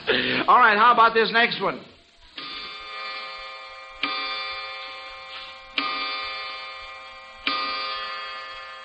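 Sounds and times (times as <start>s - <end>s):
speech: 0.2s - 1.9s
clock chimes: 2.4s - 8.8s.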